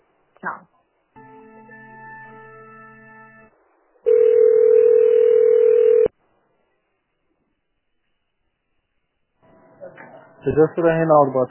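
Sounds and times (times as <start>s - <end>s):
speech: 0.4s - 0.6s, 10.5s - 11.4s
multi-pitched telephone tone during a call transfer: 4.1s - 6.1s.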